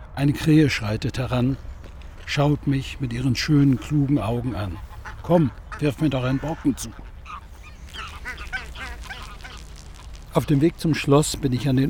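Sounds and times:
speech: 0.2 - 1.7, 2.3 - 7.1, 10.3 - 11.8
greylag geese chattering in a city park: 3.3 - 10.6.

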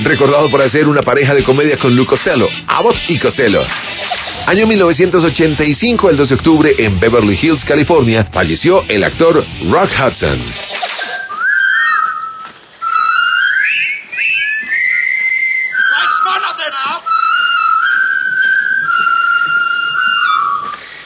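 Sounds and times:
speech: 0.1 - 10.9
person whistling a march tune from a war film: 11.1 - 20.9.

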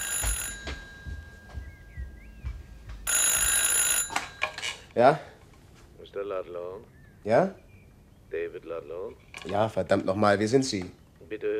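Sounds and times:
telephone bell ringing: 0.0 - 1.6, 3.0 - 4.9
faint bird chirp: 1.0 - 3.1, 6.4 - 9.3
speech: 5.0 - 5.3, 6.2 - 7.6, 8.3 - 11.5.

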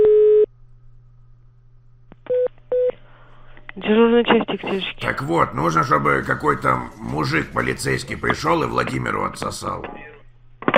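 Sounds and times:
telephone line beeps during a call: 0.0 - 0.5
low hum on a telephone line: 0.0 - 10.6
speech: 3.9 - 10.1.

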